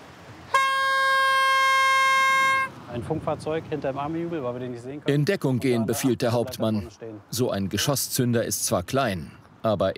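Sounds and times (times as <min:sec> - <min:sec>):
warning horn blast at a military ordnance disposal site: 0:00.5 - 0:02.8
speech: 0:03.0 - 0:09.9.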